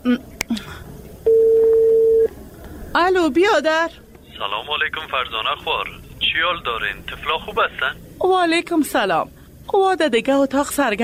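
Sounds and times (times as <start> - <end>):
mobile phone call ringback tone: 1.3 - 2.3
speech: 3.0 - 11.0.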